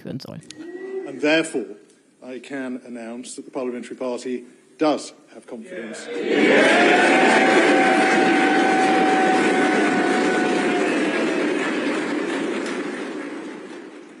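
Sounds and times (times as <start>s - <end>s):
speech: 0.0s - 8.6s
large group of politicians cheering: 5.7s - 14.1s.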